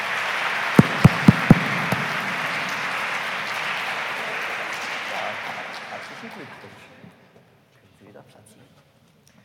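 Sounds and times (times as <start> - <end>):
audience hand claps after a baptism: 0.0 - 6.3.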